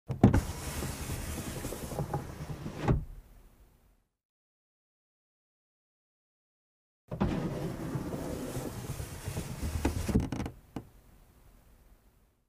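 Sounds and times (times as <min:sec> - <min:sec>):
car glass window lowered and raised manually: 0:00.1 - 0:03.2, 0:07.1 - 0:10.5.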